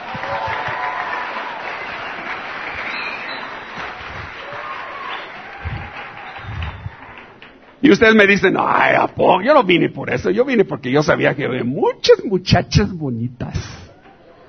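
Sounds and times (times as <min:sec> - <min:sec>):
faint voices and cheers: 0:00.0 - 0:07.6
audience applause: 0:00.0 - 0:08.4
speech: 0:07.9 - 0:13.8.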